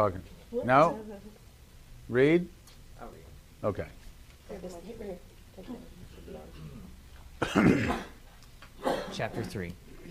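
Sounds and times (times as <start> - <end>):
speech: 0.0 - 1.3, 2.1 - 6.6, 7.4 - 8.1, 8.8 - 10.0
person clearing throat: 6.5 - 8.2, 8.8 - 9.5.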